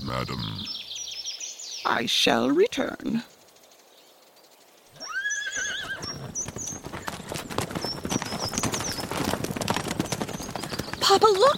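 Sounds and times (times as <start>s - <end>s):
speech: 0.1s - 0.8s, 1.9s - 3.4s, 11.2s - 11.5s
horse whinnying: 5.0s - 7.4s
horse-drawn carriage hooves clip-clopping on a hard surface: 5.9s - 11.5s.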